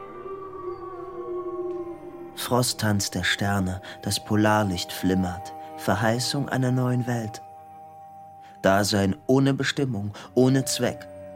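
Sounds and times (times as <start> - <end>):
dogs howling in a long sustained chorus: 0.0 - 3.8
speech: 2.4 - 7.4, 8.6 - 11.1.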